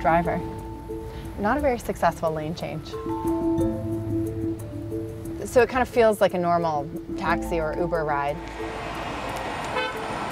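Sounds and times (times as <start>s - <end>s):
speech: 0.0s - 0.6s, 1.4s - 3.7s, 5.4s - 8.8s
road and engine rumble: 0.0s - 10.2s
car horn honk: 9.7s - 10.1s.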